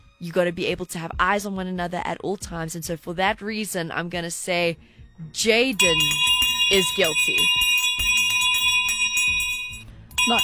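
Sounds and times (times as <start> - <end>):
speech: 0.2 - 7.8, 10.3 - 10.4
bell ringing: 5.8 - 10.4.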